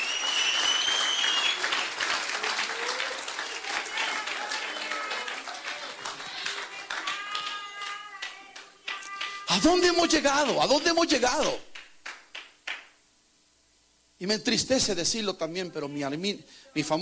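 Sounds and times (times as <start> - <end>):
voices whooping over applause: 0.0 - 10.2
audience applauding: 0.0 - 12.9
speech: 9.6 - 11.7, 14.2 - 17.0.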